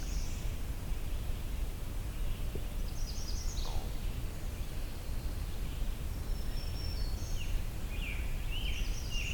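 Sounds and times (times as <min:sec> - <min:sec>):
steady hiss of outdoor noise: 0:00.0 - 0:09.3
magnolia warbler singing short high sweet phrases: 0:02.1 - 0:09.3.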